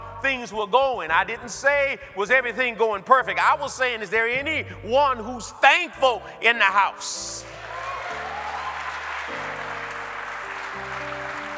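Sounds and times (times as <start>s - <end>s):
sustained organ chords: 0.0s - 11.5s
speech: 0.2s - 7.7s
audience clapping: 7.4s - 11.5s.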